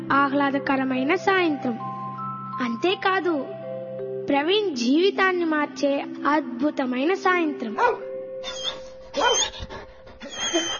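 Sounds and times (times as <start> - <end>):
speech: 0.1 - 1.9, 2.6 - 3.6, 4.3 - 8.6, 9.2 - 9.8, 10.5 - 10.7
puppy yipping and whimpering while playing on a front lawn: 7.8 - 10.7.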